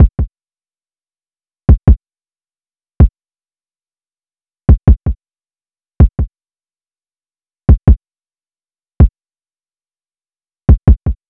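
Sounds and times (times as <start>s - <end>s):
kick drum loop: 0.0s - 0.3s, 4.7s - 5.2s, 6.0s - 6.3s, 7.7s - 8.0s, 10.7s - 11.2s.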